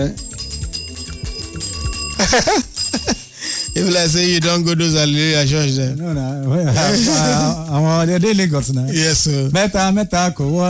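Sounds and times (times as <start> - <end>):
speech: 0.0 - 0.2, 1.6 - 10.6
hand bell ringing: 0.0 - 4.7.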